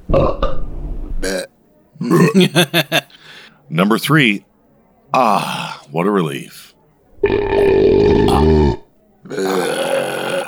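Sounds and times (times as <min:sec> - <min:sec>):
loud croaky belch: 0:01.2 - 0:02.7, 0:05.2 - 0:05.9, 0:07.2 - 0:10.4
speech: 0:02.0 - 0:03.0, 0:03.7 - 0:04.5, 0:05.1 - 0:06.7
laughter: 0:02.0 - 0:03.5.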